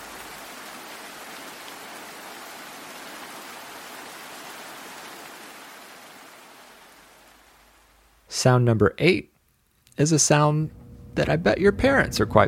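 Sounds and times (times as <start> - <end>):
rain: 0.0 - 8.4, 9.4 - 9.9
speech: 8.4 - 9.3, 10.0 - 12.4.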